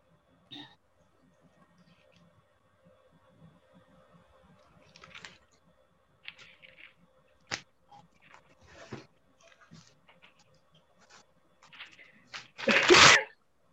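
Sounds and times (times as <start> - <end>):
quiet rustling as people look up Bible verses: 3.4 - 12.7
single loud sneeze: 12.6 - 13.3.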